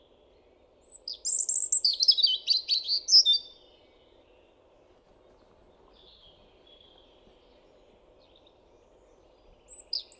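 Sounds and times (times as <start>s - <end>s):
European robin Erithacus rubecula singing: 0.8s - 3.5s, 9.7s - 10.1s.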